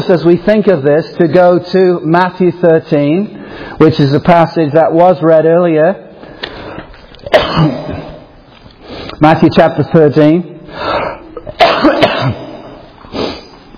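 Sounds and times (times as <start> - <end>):
speech: 0.1 - 6.0, 7.3 - 7.9, 9.2 - 11.2, 11.8 - 12.5
person clearing throat: 7.2 - 8.3, 11.1 - 12.9
person coughing: 7.2 - 8.3, 11.0 - 12.8.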